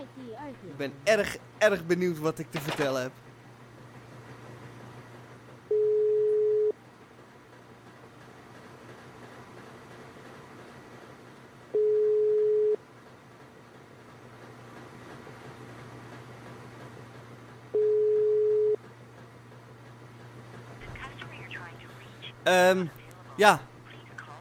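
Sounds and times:
speech: 0:00.3 - 0:03.3, 0:22.7 - 0:23.7
outgoing call ringback tones on a phone line: 0:05.7 - 0:06.7, 0:11.8 - 0:12.8, 0:17.8 - 0:18.8.

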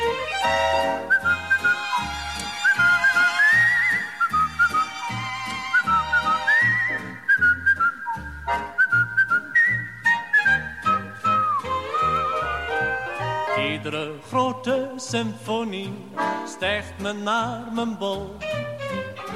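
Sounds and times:
bass: 0:00.0 - 0:19.3
person whistling a bouncy melody: 0:01.0 - 0:13.8
speech: 0:14.7 - 0:18.6.

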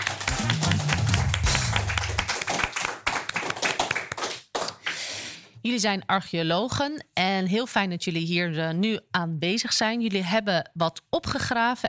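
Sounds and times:
studio audience applause: 0:00.0 - 0:04.9
low musical tone: 0:00.3 - 0:02.3
speech: 0:05.6 - 0:11.8.

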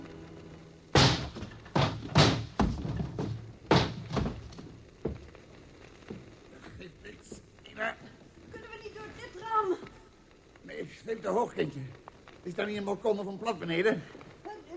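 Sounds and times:
someone banging against a locked door to force it open: 0:00.9 - 0:05.2
speech: 0:11.1 - 0:14.1.

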